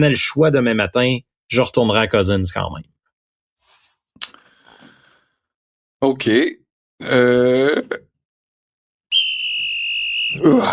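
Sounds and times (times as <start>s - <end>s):
speech: 0.0s - 2.9s, 6.0s - 8.0s, 10.4s - 10.7s
sharp shrill whistle blast: 9.1s - 10.7s.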